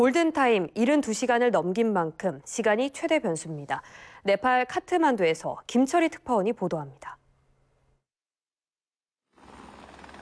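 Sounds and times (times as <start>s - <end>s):
speech: 0.0s - 7.2s
helicopter in flight with rotor din: 9.4s - 10.2s.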